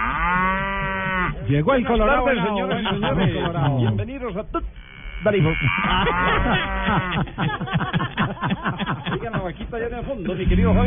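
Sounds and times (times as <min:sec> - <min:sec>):
dairy cow mooing: 0:00.0 - 0:01.5, 0:04.8 - 0:07.3, 0:10.5 - 0:10.8
speech: 0:01.5 - 0:10.8
laughter: 0:02.1 - 0:04.7, 0:05.4 - 0:10.5.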